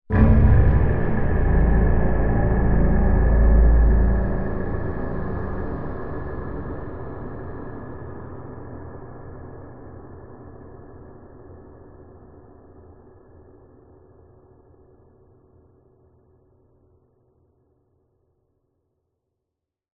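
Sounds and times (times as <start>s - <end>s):
dark scary cinematic horror stab: 0.1s - 8.8s.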